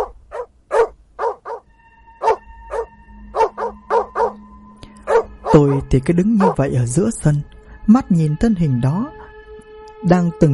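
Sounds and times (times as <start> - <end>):
black dog chained near a gate barking furiously: 0.0 - 1.6, 2.2 - 4.4, 5.0 - 5.8, 6.4 - 6.7
speech: 5.5 - 9.2, 10.0 - 10.5.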